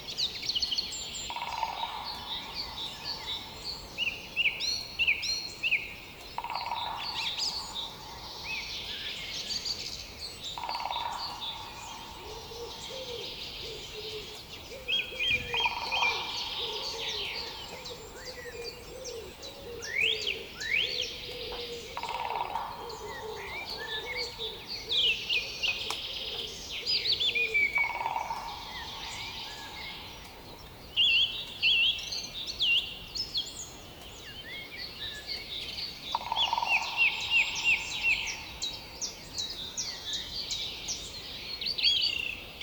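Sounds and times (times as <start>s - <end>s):
dawn chorus of many birds chirping in Rusava Czech Republic: 0.0s - 42.6s
steady background hiss: 0.0s - 42.6s
lower cooing bird call: 11.7s - 30.4s.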